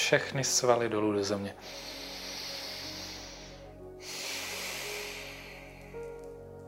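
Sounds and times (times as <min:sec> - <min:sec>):
speech: 0:00.1 - 0:02.0
slow breath in and out during a guided relaxation exercise: 0:01.6 - 0:06.6.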